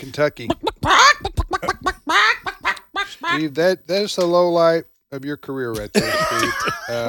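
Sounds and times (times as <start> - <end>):
speech: 0.0 - 2.3, 3.2 - 7.0
laughter: 0.2 - 3.5, 5.8 - 7.0
person imitating a chicken with squawking calls and clucks: 0.3 - 3.5.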